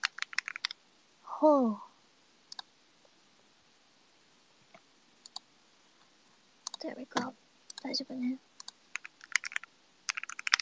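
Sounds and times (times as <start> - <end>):
typing on a computer keyboard: 0.0 - 0.8, 6.6 - 7.9, 8.6 - 10.6
speech: 1.4 - 1.9, 6.9 - 8.5.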